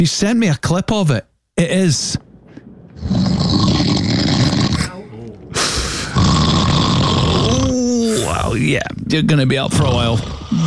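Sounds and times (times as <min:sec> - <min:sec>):
speech: 0:00.0 - 0:02.2, 0:08.5 - 0:10.6
man snoring loudly while asleep: 0:03.0 - 0:04.9, 0:05.6 - 0:08.5, 0:09.8 - 0:10.6.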